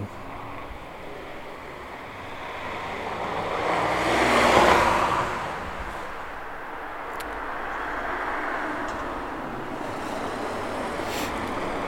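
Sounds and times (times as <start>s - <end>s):
single car driving past on a street: 0.0s - 11.8s.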